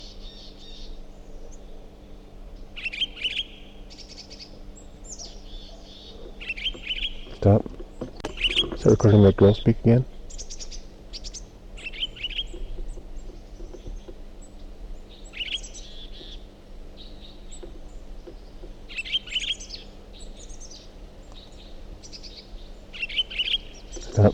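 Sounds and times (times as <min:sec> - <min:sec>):
faint steady low hum: 0:00.0 - 0:24.3
bird chirping: 0:02.7 - 0:24.3
speech: 0:07.4 - 0:07.7, 0:08.8 - 0:10.1.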